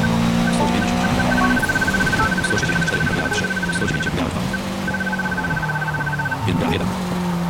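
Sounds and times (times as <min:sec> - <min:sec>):
thin high beeping tone: 0:00.0 - 0:04.2, 0:04.9 - 0:06.4
race car engine in a racing video game turning through a left hairpin: 0:00.0 - 0:07.4.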